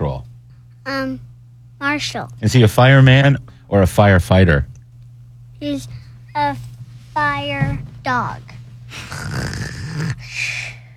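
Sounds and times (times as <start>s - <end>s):
speech: 0.9s - 4.7s, 5.6s - 10.6s
breathy hissing exhale: 8.9s - 10.9s
child imitating snoring with a voice: 8.9s - 10.9s.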